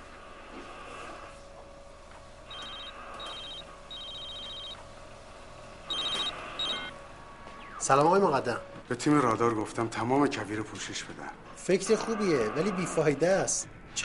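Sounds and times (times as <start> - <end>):
telephone ringing on an outgoing call: 2.5 - 4.9, 5.9 - 6.9
speech: 7.9 - 14.0.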